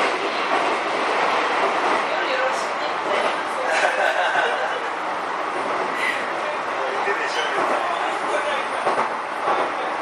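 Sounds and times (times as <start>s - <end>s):
commuter train running between stations heard on board: 0.0s - 10.0s
laughter: 3.5s - 5.1s.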